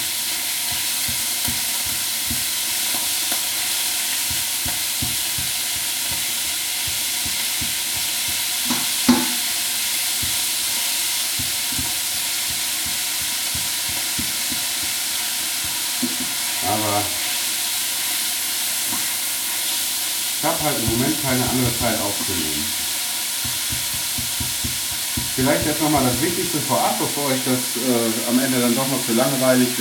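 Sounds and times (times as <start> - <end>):
food sizzling in a hot frying pan: 0.0 - 29.8
speech: 20.8 - 22.8, 25.4 - 29.8.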